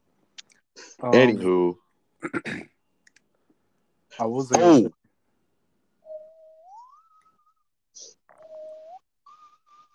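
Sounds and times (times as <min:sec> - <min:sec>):
speech: 0:01.0 - 0:02.7, 0:04.2 - 0:05.0
person whistling eerie opening music of a 1984 film: 0:06.0 - 0:07.7, 0:08.4 - 0:09.9.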